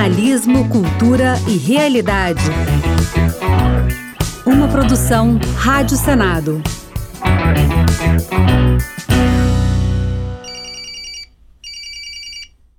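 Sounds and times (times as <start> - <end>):
speech: 0.0 - 9.5
telephone ringing in short trilling bursts: 10.4 - 12.6.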